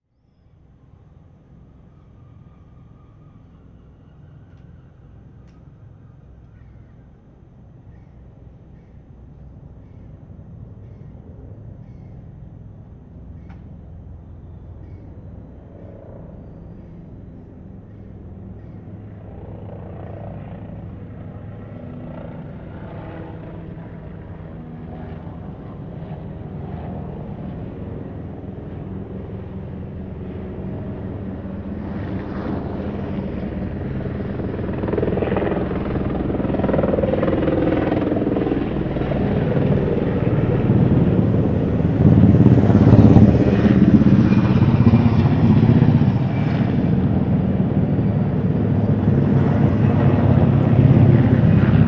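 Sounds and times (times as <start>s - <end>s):
low-flying helicopter: 0.1s - 51.8s.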